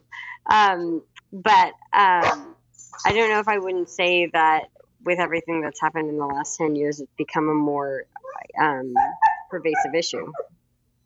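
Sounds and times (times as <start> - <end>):
speech: 0.5 - 10.6
dog barking excitedly: 8.2 - 10.5.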